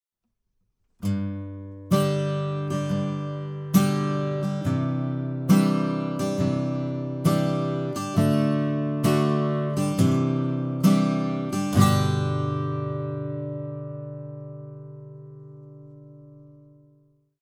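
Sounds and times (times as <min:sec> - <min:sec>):
acoustic guitar: 0:00.9 - 0:17.3.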